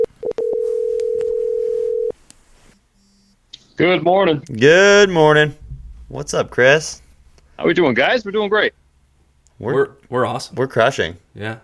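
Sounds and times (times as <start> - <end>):
long steady electronic phone ringing tone: 0.0 - 2.1
phone line dialing beeps: 0.0 - 2.1
speech: 3.8 - 7.0, 7.6 - 8.8, 9.6 - 11.6.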